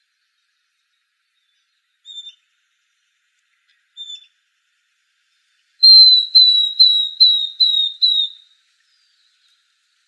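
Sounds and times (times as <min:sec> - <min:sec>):
Northern beardless-tyrannulet calling in Arizona: 0:05.8 - 0:08.4.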